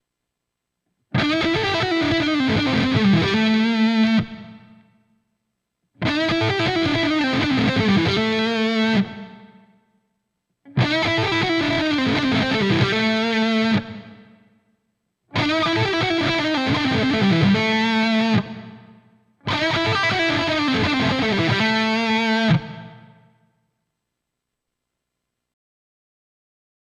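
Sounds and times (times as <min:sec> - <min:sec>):
electric guitar lead on mini humbucker dual rail pickup: 0:01.1 - 0:04.9, 0:06.0 - 0:09.7, 0:10.7 - 0:14.4, 0:15.3 - 0:23.3.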